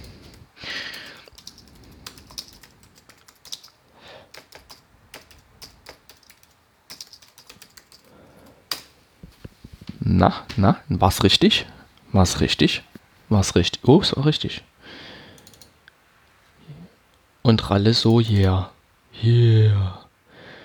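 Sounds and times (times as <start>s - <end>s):
typing a password on a computer keyboard: 0.0s - 8.9s, 15.4s - 15.7s
soft rustle: 8.9s - 10.1s
speech: 10.1s - 14.7s, 17.5s - 20.0s.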